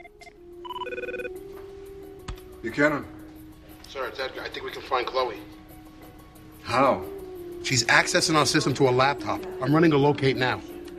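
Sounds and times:
telephone ringing with an electronic warble: 0:00.0 - 0:01.4
speech: 0:02.6 - 0:03.2, 0:03.9 - 0:05.6, 0:06.6 - 0:10.7.

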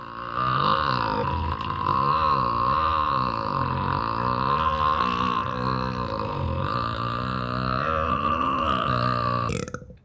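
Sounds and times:
enormous croaky burp: 0:00.0 - 0:10.0.

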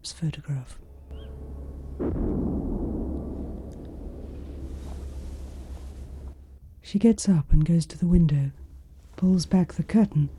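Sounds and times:
speech: 0:00.0 - 0:00.8, 0:06.9 - 0:08.6, 0:09.2 - 0:10.3
distant gunfire at night: 0:01.1 - 0:06.4.

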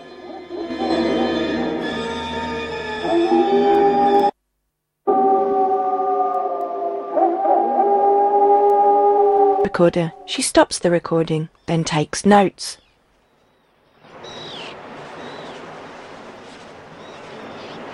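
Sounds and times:
chorus of overlapping drawn-out howls in a forest: 0:00.1 - 0:02.4, 0:03.0 - 0:04.3, 0:05.1 - 0:10.3
speech: 0:09.7 - 0:12.8.

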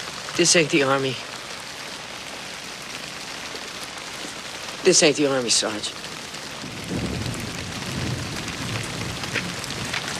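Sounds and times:
steady dense rain pouring: 0:00.0 - 0:10.1
speech: 0:00.4 - 0:01.3, 0:04.9 - 0:06.1.

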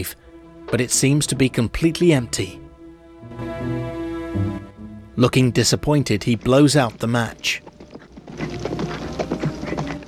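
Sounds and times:
speech: 0:00.0 - 0:02.6, 0:05.2 - 0:07.7
horse hooves galloping into an Old West town: 0:04.8 - 0:10.0.

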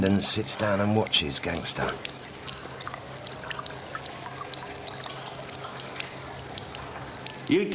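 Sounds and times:
speech: 0:00.0 - 0:02.3, 0:07.5 - 0:07.7
urine splashing into a champagne glass: 0:01.8 - 0:07.5.

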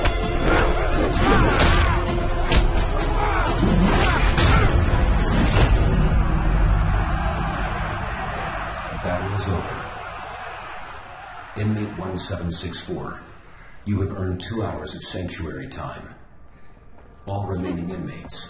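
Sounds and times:
heavy punches and roundhouse kicks landing: 0:00.0 - 0:06.0
people shouting: 0:00.0 - 0:12.2
speech: 0:11.7 - 0:16.2, 0:17.2 - 0:18.4.

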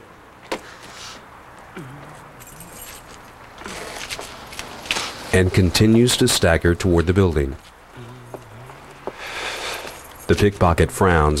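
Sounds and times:
keys jangling as they are dropped and picked up: 0:01.9 - 0:04.6, 0:08.9 - 0:10.6
speech: 0:05.3 - 0:07.7, 0:10.3 - 0:11.3.

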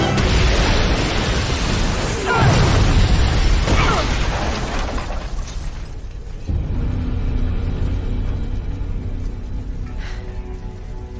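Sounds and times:
factory exploding: 0:00.0 - 0:09.6.

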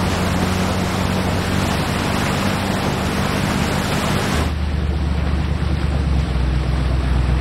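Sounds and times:
boat engine drone on open water: 0:00.0 - 0:07.3
waves and spray rushing on open water: 0:00.0 - 0:07.3.

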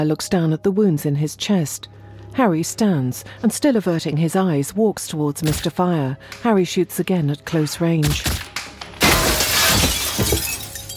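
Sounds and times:
speech: 0:00.0 - 0:08.4
body crashing through a glass coffee table: 0:08.1 - 0:10.9
tinkling glass shards: 0:09.0 - 0:10.9.

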